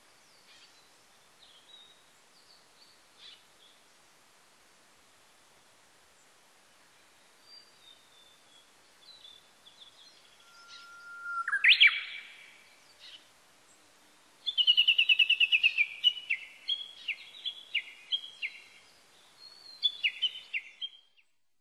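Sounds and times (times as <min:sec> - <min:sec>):
Japanese bush warbler song: 0:07.4 - 0:13.3, 0:14.4 - 0:21.3.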